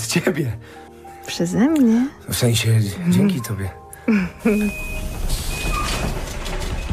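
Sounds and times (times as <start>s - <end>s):
speech: 0.1s - 5.2s
steady electronic warning beeps: 4.5s - 6.9s
door sliding open or shut with a rushing clatter: 4.8s - 6.9s.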